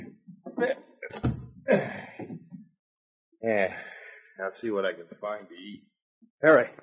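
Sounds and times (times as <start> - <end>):
speech: 0.6 - 0.8, 4.5 - 6.8
wooden cabin door shutting: 1.1 - 1.5.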